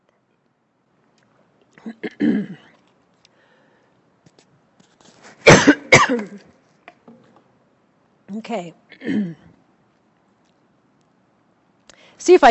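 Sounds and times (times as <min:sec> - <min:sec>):
speech: 0:01.8 - 0:02.6, 0:08.4 - 0:09.4, 0:12.2 - 0:12.4
person giving a Bible teaching coughing harshly: 0:01.8 - 0:02.8, 0:05.4 - 0:06.4, 0:09.0 - 0:09.5.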